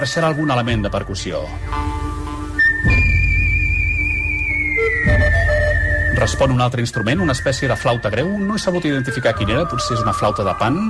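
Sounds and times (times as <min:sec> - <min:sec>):
speech: 0:00.0 - 0:02.0, 0:06.2 - 0:10.8
whistled melody: 0:00.0 - 0:10.8
marranzano jaw harp buzzing drone: 0:01.5 - 0:06.0.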